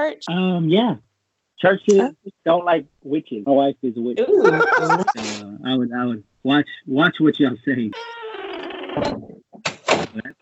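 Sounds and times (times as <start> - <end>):
speech: 0.0 - 8.3, 9.0 - 9.3
laughter: 4.2 - 5.4
door creaking open on its hinges: 8.0 - 10.2.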